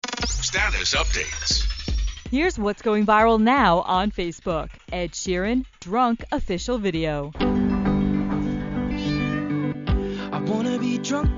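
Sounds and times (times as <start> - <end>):
speech: 0.5 - 1.7, 2.3 - 7.6, 10.8 - 11.3
cat meowing in a pop music video: 7.8 - 9.8.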